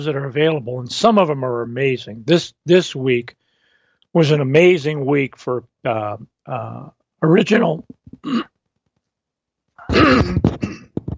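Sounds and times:
speech: 0.0s - 3.4s, 4.1s - 8.5s
person clearing throat: 8.1s - 8.5s, 9.8s - 11.0s.

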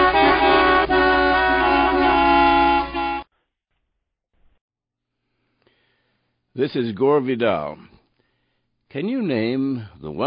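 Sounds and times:
car horn blaring: 0.0s - 3.3s
speech: 6.6s - 7.9s, 8.9s - 10.2s.

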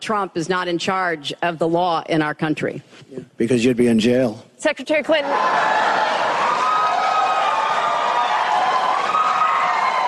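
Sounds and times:
speech: 0.0s - 6.1s
large debate audience applauding and cheering: 5.3s - 10.0s.

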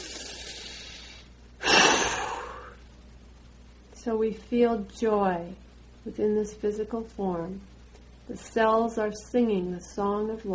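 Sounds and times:
deep breath during a guided meditation: 0.0s - 2.8s
speech: 4.0s - 7.7s, 8.3s - 10.5s.

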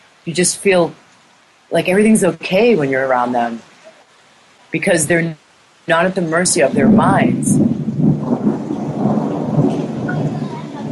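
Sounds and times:
steady rain: 0.0s - 10.9s
speech: 0.2s - 1.0s, 1.7s - 3.7s, 4.7s - 7.6s
rolling thunder: 6.5s - 10.9s.

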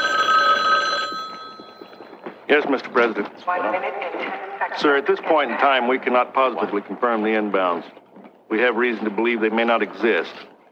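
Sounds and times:
telephone bell ringing: 0.0s - 2.3s
speech: 2.5s - 10.5s.

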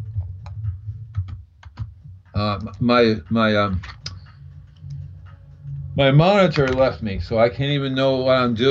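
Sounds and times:
typing on a computer keyboard: 0.2s - 1.9s
speech: 2.4s - 4.0s, 6.0s - 8.7s.

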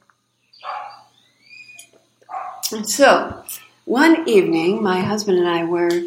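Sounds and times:
dog barking to ward off intruders: 0.6s - 1.1s, 2.3s - 2.7s
dogs yelping thin and high: 0.6s - 2.7s
speech: 2.7s - 6.0s.

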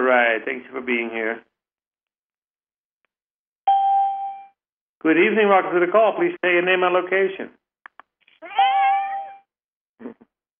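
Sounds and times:
speech: 0.1s - 1.5s, 5.0s - 7.6s
cat meowing: 8.4s - 9.5s.

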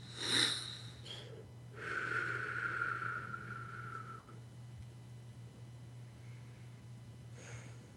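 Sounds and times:
deep inhalations from a person doing a breathing exercise: 0.0s - 4.3s
low steady hum: 0.0s - 7.9s.

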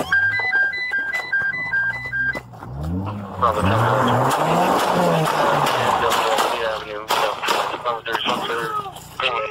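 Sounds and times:
stepped warbling police siren: 0.0s - 2.2s
voices: 3.0s - 9.4s
gunshots in sheriff's deputy body camera footage from a stolen-vehicle chase in Texas: 4.2s - 8.5s.

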